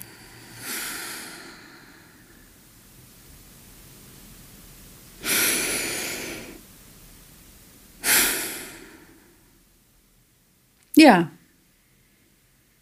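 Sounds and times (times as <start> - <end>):
slow deliberate breathing: 0.0 - 2.6, 5.2 - 6.6, 8.0 - 9.6
speech: 11.0 - 11.3.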